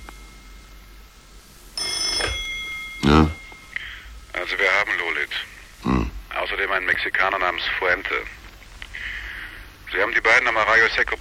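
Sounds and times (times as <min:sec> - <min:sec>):
telephone ringing at home in the cold dawn: 0:01.8 - 0:05.2
speech: 0:06.8 - 0:08.4, 0:09.9 - 0:11.1.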